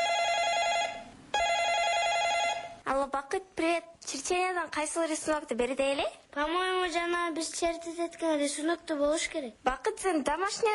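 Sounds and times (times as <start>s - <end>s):
telephone ringing at home with a bright buzzy electronic tone: 0.0s - 2.8s
speech: 3.1s - 10.7s.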